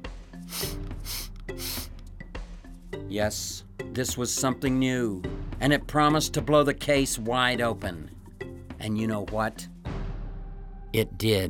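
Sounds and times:
deep sniffing inhales: 0:00.4 - 0:02.0
speech: 0:03.1 - 0:08.2, 0:08.8 - 0:09.7, 0:10.9 - 0:11.4.

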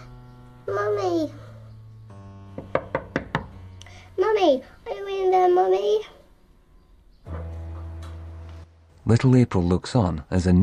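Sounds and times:
speech: 0:00.7 - 0:01.4, 0:04.4 - 0:04.7, 0:05.3 - 0:06.1, 0:09.1 - 0:10.6
knocking on a bathroom door: 0:02.5 - 0:03.6.

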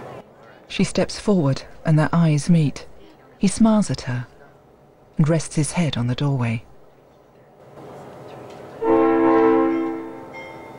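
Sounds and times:
low rumble of rail noise: 0:00.0 - 0:10.7
speech: 0:00.7 - 0:04.3, 0:05.2 - 0:06.7
train horn blaring in a steady held tone: 0:08.8 - 0:10.4.

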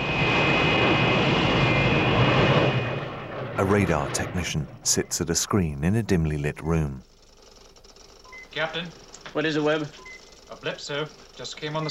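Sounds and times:
Lockheed Starfighter supersonic jet interceptor engine taxiing to a halt on an airbase: 0:00.0 - 0:04.8
speech: 0:03.6 - 0:07.1, 0:08.6 - 0:11.9.

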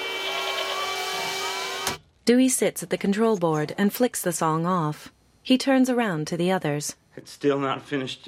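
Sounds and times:
goat bleating: 0:00.1 - 0:01.1
speech: 0:02.3 - 0:08.2.

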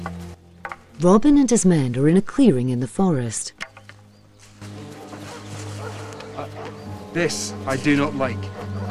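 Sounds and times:
speech: 0:01.0 - 0:03.6, 0:07.2 - 0:08.6
pack of hunting dogs barking and baying in a forest: 0:03.8 - 0:08.8.

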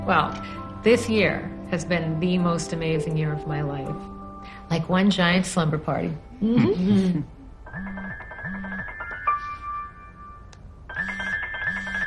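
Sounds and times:
speech: 0:00.1 - 0:08.0
mobile phone ringing with an incoming call: 0:07.6 - 0:12.0.

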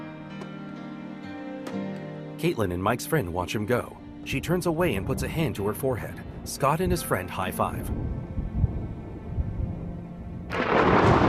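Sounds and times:
speech: 0:01.7 - 0:08.2
low deep rumble of thunder from a lightning storm: 0:07.8 - 0:11.2
sudden loud crackling roar: 0:10.5 - 0:11.2.

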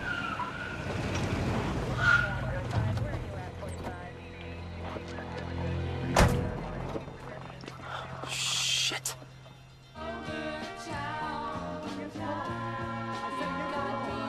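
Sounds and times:
tire squeals as police cars brake: 0:00.0 - 0:02.9
police cars rumbling: 0:00.0 - 0:09.8
police car engines idling: 0:00.0 - 0:14.2.

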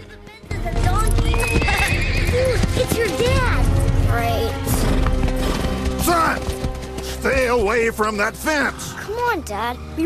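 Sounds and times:
hoofbeats of black horse cantering across grass: 0:00.2 - 0:08.2
black horse whinnying: 0:01.3 - 0:03.0
speech: 0:02.8 - 0:04.6, 0:07.2 - 0:10.0.

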